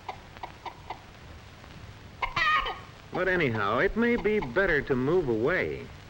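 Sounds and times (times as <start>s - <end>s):
hen clucking: 0.0s - 1.1s, 2.2s - 5.0s
speech: 3.1s - 6.0s.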